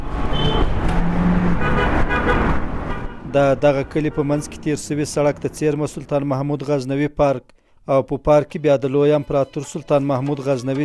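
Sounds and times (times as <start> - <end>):
cars and other traffic passing on a highway beside a village bazaar: 0.0 - 7.1
brief high car horn toot: 0.3 - 0.8, 1.5 - 3.3
speech: 3.3 - 10.8.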